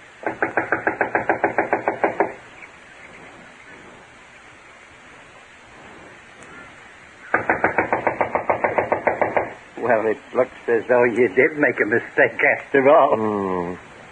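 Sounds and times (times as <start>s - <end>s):
soft hiss: 0.0s - 14.1s
knocking on the wooden back door of a run-down house: 0.2s - 2.4s, 7.3s - 9.6s
speech: 9.9s - 13.9s.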